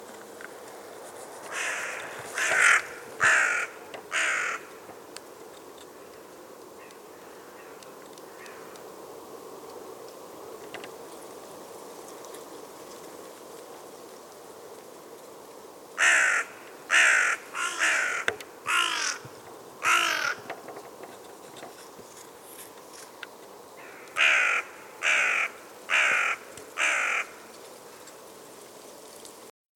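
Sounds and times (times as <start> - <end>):
carrion crow calling: 1.5 - 4.7, 6.8 - 8.7, 16.0 - 20.5, 23.8 - 27.4.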